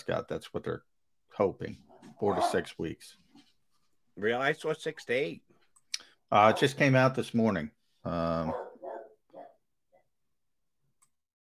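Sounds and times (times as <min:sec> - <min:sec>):
speech: 0:00.0 - 0:03.2, 0:04.2 - 0:05.5, 0:06.3 - 0:08.7
dog barking: 0:02.2 - 0:02.7, 0:06.4 - 0:06.8, 0:08.4 - 0:09.6
dog yelping: 0:08.5 - 0:09.6.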